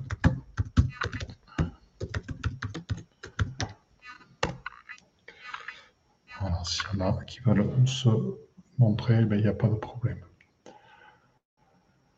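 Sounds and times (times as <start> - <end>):
rapid typing on a computer keyboard: 0.0 - 3.8
speech: 6.6 - 10.3.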